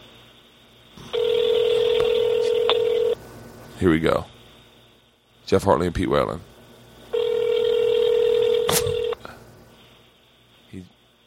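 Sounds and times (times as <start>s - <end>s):
quiet hissy phone line: 0.0s - 6.3s, 7.0s - 11.2s
outgoing phone call ringback tone to a golf course in Colorado: 1.0s - 3.2s, 7.1s - 9.2s
speech: 3.8s - 4.4s, 5.5s - 6.5s.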